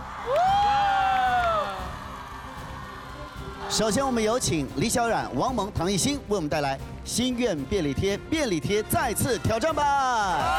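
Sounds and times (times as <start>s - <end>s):
large audience at a live stage performance screaming and cheering: 0.0s - 5.5s, 10.2s - 10.5s
speech: 3.7s - 10.5s.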